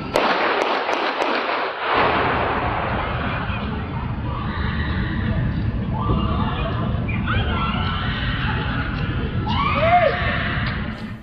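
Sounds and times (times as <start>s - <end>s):
sharp gunshots: 0.1s - 2.8s
several people screaming and shouting: 3.1s - 11.2s.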